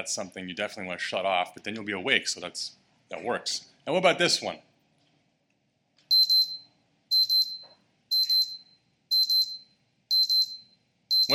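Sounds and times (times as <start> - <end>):
speech: 0.0 - 4.7
wristwatch alarm beeping: 6.1 - 11.3.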